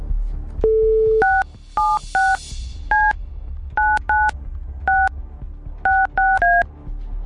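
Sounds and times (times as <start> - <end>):
paired touch-tone beeps of a telephone number being dialed: 0.6 - 3.2, 3.8 - 4.3, 4.9 - 5.1, 5.9 - 6.7.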